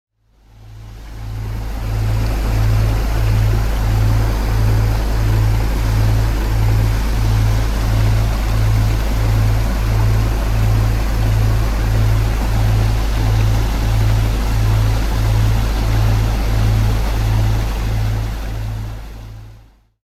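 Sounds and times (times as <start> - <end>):
water sounds: 0.3 - 19.8
binaural beats in delta wave range: 0.6 - 19.5.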